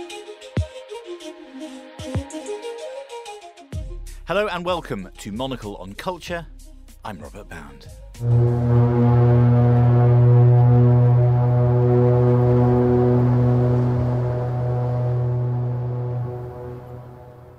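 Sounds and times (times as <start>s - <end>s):
speech: 4.3s - 9.0s
deep loud foghorn bellowing: 8.2s - 17.5s.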